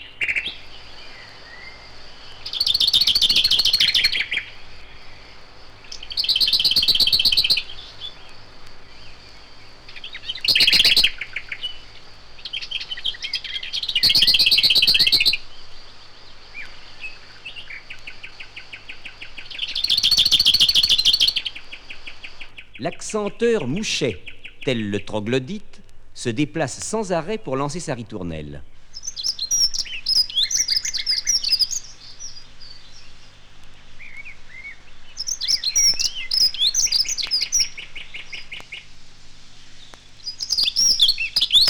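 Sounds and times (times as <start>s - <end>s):
lesser whitethroat song: 0.0s - 41.6s
speech: 23.1s - 28.7s.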